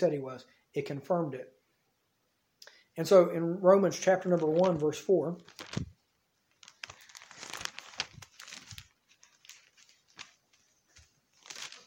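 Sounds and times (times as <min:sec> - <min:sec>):
speech: 0:00.0 - 0:01.6, 0:03.0 - 0:05.9
church congregation turning the pages of their Bibles: 0:04.2 - 0:11.8.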